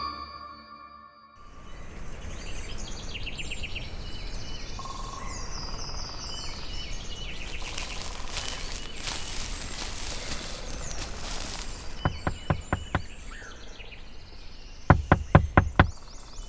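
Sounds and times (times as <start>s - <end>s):
birds: 1.5s - 16.4s
insects chirping: 6.1s - 13.3s
knocking on a door: 12.1s - 13.1s, 14.9s - 15.9s.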